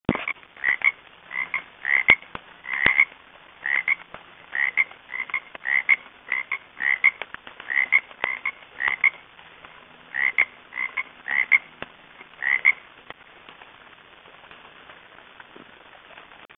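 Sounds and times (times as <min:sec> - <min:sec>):
frog ribbiting: 0:00.1 - 0:09.2, 0:10.1 - 0:11.7, 0:12.3 - 0:12.8.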